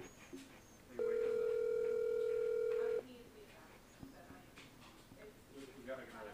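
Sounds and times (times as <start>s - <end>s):
loud steady electronic phone ringing tone: 1.0s - 3.0s.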